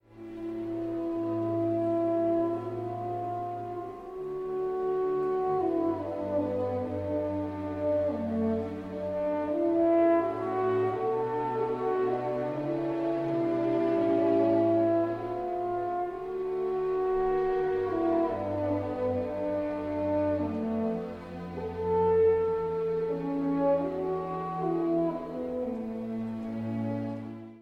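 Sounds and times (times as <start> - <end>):
horn: 0.0 - 27.5.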